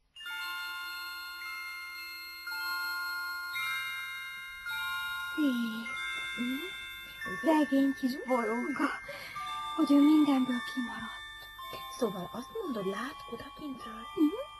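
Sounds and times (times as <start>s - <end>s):
small bells jingling: 0.0s - 14.5s
speech: 5.4s - 6.7s, 7.3s - 11.2s, 12.0s - 14.4s.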